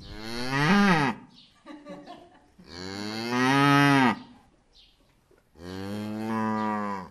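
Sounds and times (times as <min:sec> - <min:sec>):
cow mooing: 0:00.0 - 0:01.2, 0:02.7 - 0:04.3, 0:05.6 - 0:07.0
laughter: 0:01.6 - 0:02.6.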